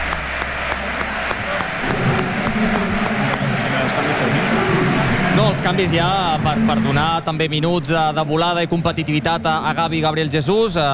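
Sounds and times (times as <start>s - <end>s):
stadium crowd at a football match applauding substituted players: 0.0s - 6.4s
speech: 5.4s - 10.9s.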